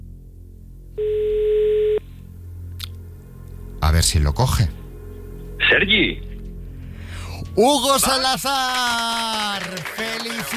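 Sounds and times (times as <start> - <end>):
telephone dial tone while dialing a number: 1.0 - 2.0
speech: 4.0 - 4.8, 5.7 - 6.3, 7.6 - 10.5.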